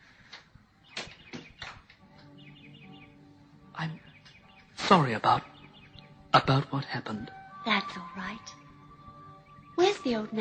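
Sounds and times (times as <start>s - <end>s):
bird chirping: 0.7s - 10.4s
speech: 3.8s - 4.1s, 4.9s - 5.5s, 6.3s - 8.6s, 10.0s - 10.4s.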